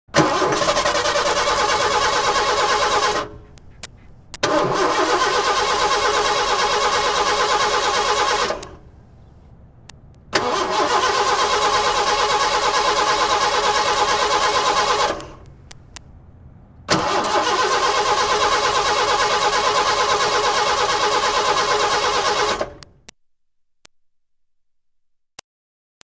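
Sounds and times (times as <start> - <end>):
car failing to start: 0.1 - 23.1.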